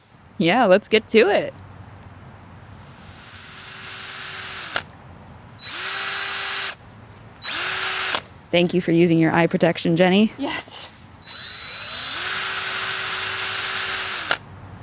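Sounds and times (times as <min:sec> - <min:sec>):
speech: 0:00.4 - 0:01.6, 0:08.5 - 0:10.8
power drill drilling holes into red oak log: 0:02.8 - 0:04.9, 0:05.6 - 0:06.8, 0:07.4 - 0:08.2, 0:11.2 - 0:14.4.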